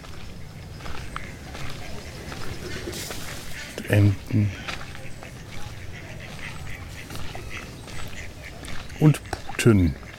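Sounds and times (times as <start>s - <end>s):
steady rustling outdoor background: 0.0s - 10.1s
turkeys gobbling in a poultry enclosure: 0.9s - 9.4s.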